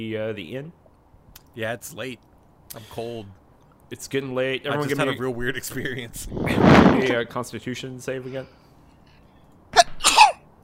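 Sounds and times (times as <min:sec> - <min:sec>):
speech: 0:00.0 - 0:00.8, 0:01.5 - 0:08.6
single sharp sneeze: 0:09.8 - 0:10.4.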